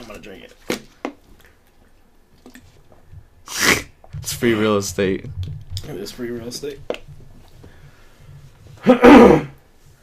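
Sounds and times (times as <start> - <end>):
speech: 0.1 - 0.9, 4.3 - 6.9, 8.8 - 9.5
person coughing after spit goes down wrong pipe: 8.8 - 9.6.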